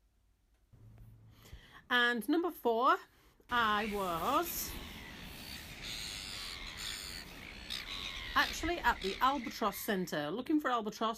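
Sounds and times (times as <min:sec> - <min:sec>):
speech: 0:01.9 - 0:04.8, 0:08.4 - 0:11.1
steady wind on the coast: 0:03.6 - 0:10.0
seagulls calling on the coast: 0:03.6 - 0:10.2.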